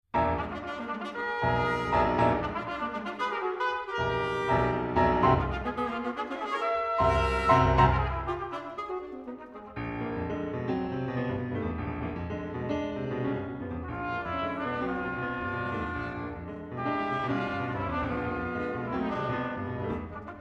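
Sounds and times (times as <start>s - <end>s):
piano: 0.0s - 20.3s
trumpet playing a fanfare: 0.2s - 9.8s, 13.9s - 20.3s
alto sax: 0.2s - 11.3s, 13.3s - 20.3s.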